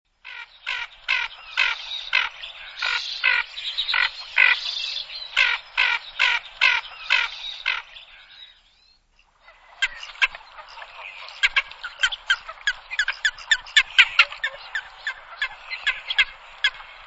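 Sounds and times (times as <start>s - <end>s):
ferruginous duck calling with harsh rasping notes and clicking croaks: 0.2s - 7.9s, 9.5s - 17.0s.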